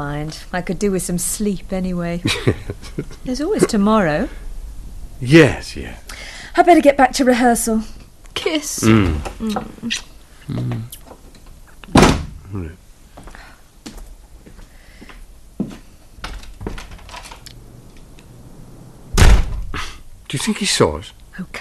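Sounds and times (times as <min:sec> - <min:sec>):
speech: 0:00.0 - 0:04.4, 0:05.2 - 0:11.0, 0:12.5 - 0:12.8, 0:20.3 - 0:21.5
laughter: 0:02.2 - 0:03.8
door slamming hard: 0:11.9 - 0:12.4, 0:19.0 - 0:19.8.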